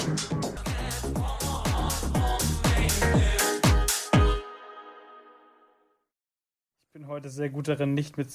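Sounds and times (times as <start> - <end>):
electronic dance music track playing: 0.0 - 4.6
speech: 7.1 - 8.3.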